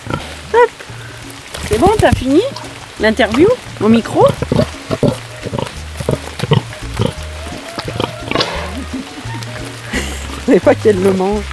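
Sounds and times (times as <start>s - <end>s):
pig on a pig farm grunting while being scratched: 0.0s - 0.6s, 3.8s - 10.4s
speech: 1.8s - 5.0s, 10.5s - 11.5s.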